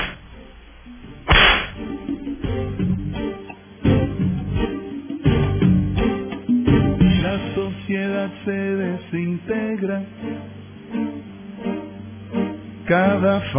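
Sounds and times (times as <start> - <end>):
sharp whip lashes cracking: 0.0 - 0.2, 1.3 - 1.9
steady musical background: 0.0 - 13.5
speech: 7.9 - 10.4, 12.9 - 13.5.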